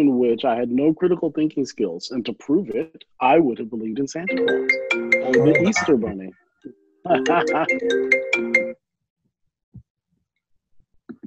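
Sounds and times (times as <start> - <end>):
speech: 0.0 - 8.5
mobile phone ringtone with bright melodic electronic tune: 4.3 - 6.3, 7.2 - 8.8
brief murmur of voice: 5.2 - 6.3.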